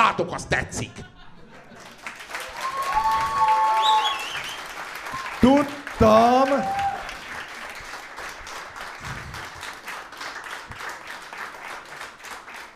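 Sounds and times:
speech: 0:00.1 - 0:01.1, 0:05.4 - 0:06.8
laughter: 0:00.8 - 0:02.2
audience applause: 0:01.8 - 0:12.7.

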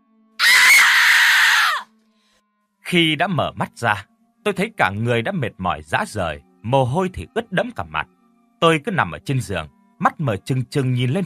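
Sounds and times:
woman screaming loudly: 0:00.4 - 0:01.9
speech: 0:02.9 - 0:11.2.

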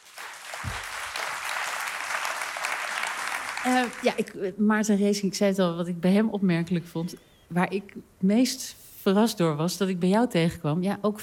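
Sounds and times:
audience applauding at an evening talk event: 0:00.0 - 0:04.3
speech: 0:03.6 - 0:11.2.

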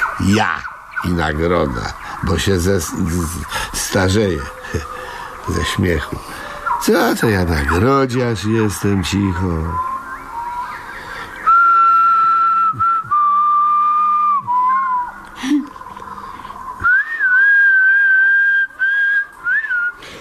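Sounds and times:
speech: 0:00.2 - 0:09.9
person whistling a carefree melody: 0:11.5 - 0:15.1, 0:16.8 - 0:20.0.

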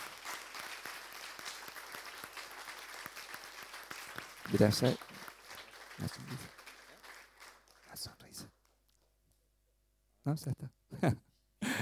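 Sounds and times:
congregation clapping at a church service: 0:00.0 - 0:08.8
speech: 0:04.5 - 0:05.0, 0:10.3 - 0:11.3.

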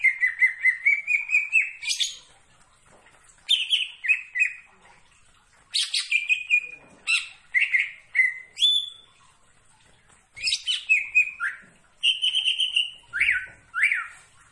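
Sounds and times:
leafbird song with whistled phrases and sharp chirps: 0:00.0 - 0:02.2, 0:03.5 - 0:04.7, 0:05.7 - 0:09.1, 0:10.4 - 0:14.2.

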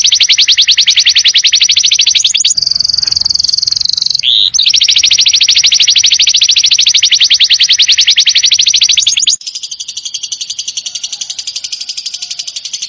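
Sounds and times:
white-eye singing a training song: 0:00.0 - 0:09.4.

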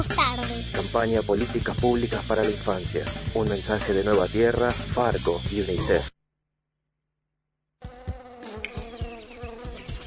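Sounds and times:
speech: 0:00.0 - 0:06.2
mosquitoes buzzing: 0:07.8 - 0:10.0.

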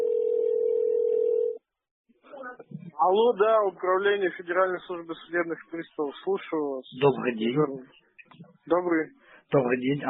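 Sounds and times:
telephone dial tone while placing a call to a bailiffs' office: 0:00.0 - 0:01.6
speech: 0:03.0 - 0:10.0.

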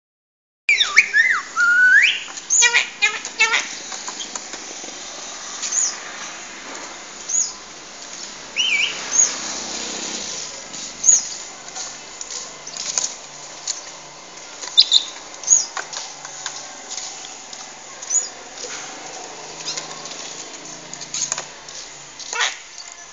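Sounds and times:
Asian pied starling singing: 0:00.7 - 0:04.5, 0:05.6 - 0:06.1, 0:07.1 - 0:07.7, 0:08.5 - 0:11.6, 0:14.6 - 0:15.8, 0:16.4 - 0:23.1.

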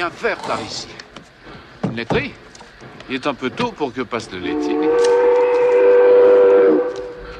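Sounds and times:
speech: 0:00.0 - 0:01.0, 0:01.9 - 0:02.5, 0:03.1 - 0:05.1
stopping train whistle: 0:04.4 - 0:07.3.

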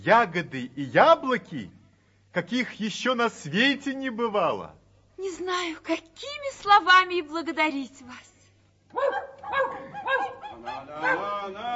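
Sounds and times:
speech: 0:00.0 - 0:08.3, 0:08.9 - 0:11.7
dogs barking and yelping: 0:08.9 - 0:11.4.

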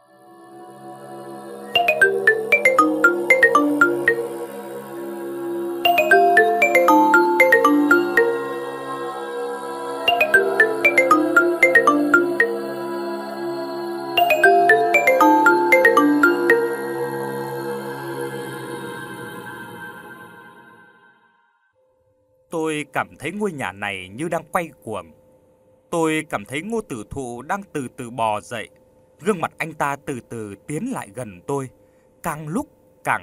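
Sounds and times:
Nokia mobile phone ringing with a melodic ringtone: 0:01.8 - 0:04.6, 0:05.9 - 0:09.0, 0:10.1 - 0:13.0, 0:14.2 - 0:17.4
speech: 0:23.0 - 0:25.2, 0:25.9 - 0:33.2.

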